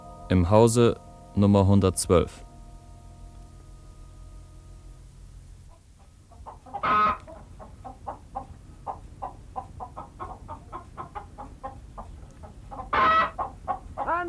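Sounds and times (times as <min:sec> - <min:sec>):
speech: 0:00.3 - 0:02.5
hen clucking after laying an egg: 0:05.7 - 0:14.2.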